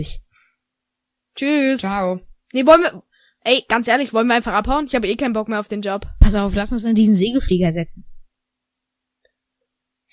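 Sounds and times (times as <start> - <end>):
speech: 0.0 - 0.2, 1.4 - 8.1
computer mouse clicks: 9.6 - 10.0.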